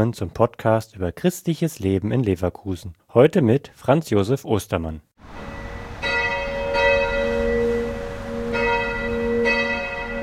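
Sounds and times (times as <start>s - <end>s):
speech: 0.0s - 5.4s
church bells of a Catholic church ringing in Rheindorf, Leverkusen: 5.3s - 10.2s.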